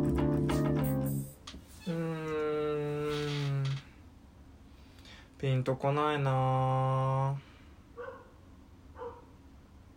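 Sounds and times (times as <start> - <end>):
steady low hum: 0.0 - 9.9
speech: 5.4 - 7.5
dog barking: 8.0 - 8.4, 9.0 - 9.4.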